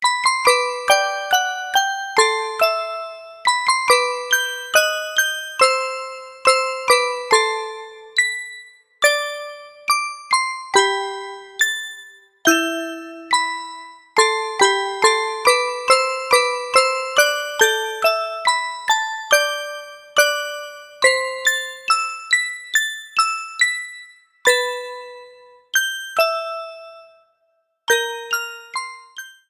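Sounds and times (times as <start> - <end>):
bittersweet music box melody: 0.0 - 27.3, 27.9 - 29.4.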